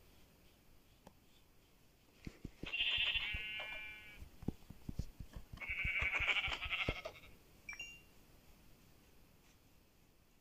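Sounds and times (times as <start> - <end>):
soft clicking footsteps or tapping: 0.3 - 7.1
black sheep bleating in a video game: 2.6 - 4.2, 5.6 - 7.3.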